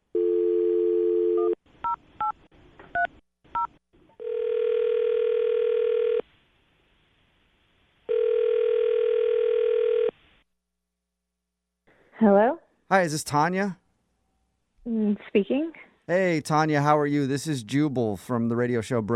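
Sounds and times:
phone dial tone: 0:00.1 - 0:01.6, 0:03.0 - 0:06.2, 0:08.1 - 0:10.2
speech: 0:13.0 - 0:13.8, 0:15.2 - 0:19.1.

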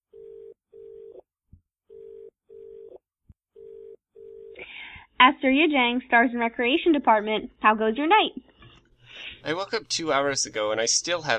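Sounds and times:
outgoing telephone call electronic ring tone: 0:01.9 - 0:03.0, 0:03.6 - 0:04.6
speech: 0:05.2 - 0:08.4, 0:09.4 - 0:11.3.

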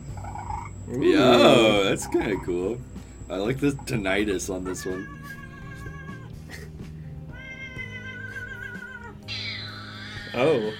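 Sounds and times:
steady low hum: 0:00.0 - 0:07.4
speech: 0:00.9 - 0:05.4, 0:10.4 - 0:10.7
agitated cat meowing and yowling: 0:04.6 - 0:06.3, 0:07.3 - 0:10.7.

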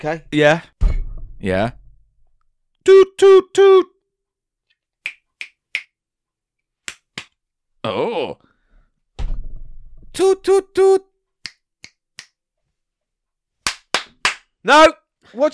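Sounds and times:
speech: 0:00.0 - 0:00.8, 0:01.4 - 0:01.8, 0:02.8 - 0:03.9, 0:07.8 - 0:08.5, 0:10.2 - 0:11.1, 0:14.6 - 0:15.5
crisp finger snaps: 0:05.0 - 0:06.0, 0:06.8 - 0:07.4, 0:11.4 - 0:12.4
sharp hand claps: 0:05.0 - 0:06.0, 0:06.8 - 0:07.4, 0:13.6 - 0:14.5.

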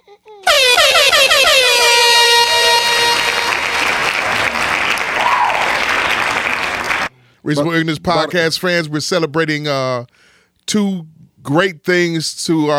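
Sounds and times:
air horn blaring: 0:00.4 - 0:05.4
hand clapping: 0:02.6 - 0:07.1
speech: 0:07.5 - 0:12.7.

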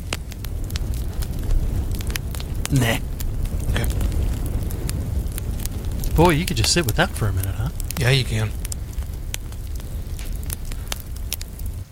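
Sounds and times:
log fire crackling with pops and snaps: 0:00.0 - 0:11.9
speech: 0:02.7 - 0:03.1, 0:06.2 - 0:08.6.

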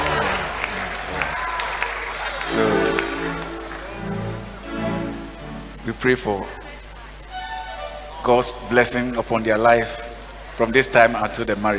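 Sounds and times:
audience clapping: 0:00.0 - 0:06.0
speech: 0:05.9 - 0:06.6, 0:08.2 - 0:10.0, 0:10.6 - 0:11.7.

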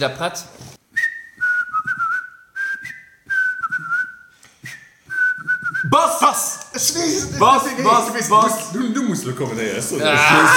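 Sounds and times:
speech: 0:00.0 - 0:00.7, 0:06.0 - 0:10.5
noise: 0:00.0 - 0:10.5
person whistling a simple tune: 0:00.9 - 0:06.0
laughter: 0:09.5 - 0:10.5.

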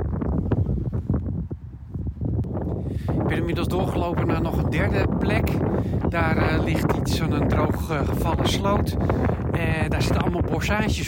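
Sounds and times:
wind buffeting a microphone outdoors: 0:00.0 - 0:11.0
speech: 0:03.3 - 0:11.0.

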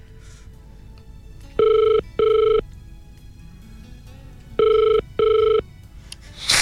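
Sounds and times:
electronic ringback tones of an outgoing phone call: 0:01.6 - 0:02.6, 0:04.6 - 0:05.7
quiet phone line hiss: 0:06.2 - 0:06.6.

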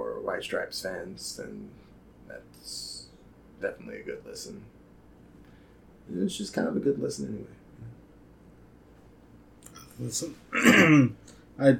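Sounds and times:
speech: 0:00.3 - 0:03.0, 0:03.6 - 0:04.8, 0:06.1 - 0:07.9, 0:10.0 - 0:11.7
person clearing a dry throat: 0:10.5 - 0:11.2.

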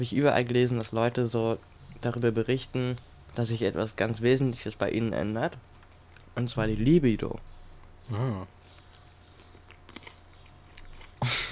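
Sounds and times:
speech: 0:00.0 - 0:05.7, 0:06.4 - 0:07.5, 0:08.1 - 0:08.6
chewing food: 0:05.6 - 0:06.4, 0:07.4 - 0:11.4
loud crunching bite: 0:08.7 - 0:11.4.

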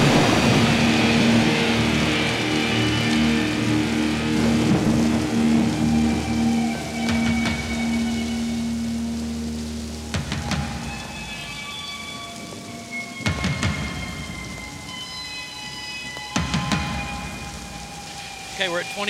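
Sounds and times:
loud thunder cracks: 0:00.0 - 0:08.7, 0:10.0 - 0:15.0
heavy metal song intro: 0:00.0 - 0:19.0
heavy rain in a heavy metal song intro: 0:00.0 - 0:19.0
speech: 0:18.7 - 0:19.0.

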